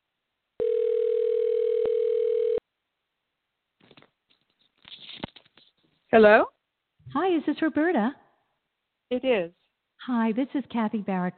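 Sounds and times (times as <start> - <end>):
electronic ringback tone of an outgoing phone call: 0.6 - 2.6
rustling of the handset: 3.8 - 6.1
speech: 6.1 - 8.2, 9.1 - 11.3.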